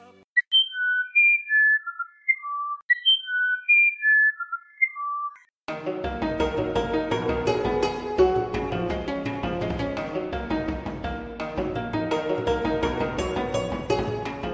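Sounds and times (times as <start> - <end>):
Amazonian irapuru bird flute-like whistled song: 0.4 - 5.5
instrumental music: 5.7 - 14.5.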